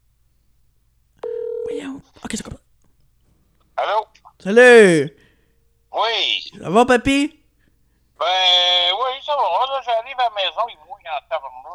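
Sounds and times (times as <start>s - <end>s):
telephone ringing tone waiting for an answer: 1.2s - 1.9s
speech: 1.7s - 2.6s, 3.8s - 5.2s, 6.0s - 7.4s, 8.2s - 11.7s.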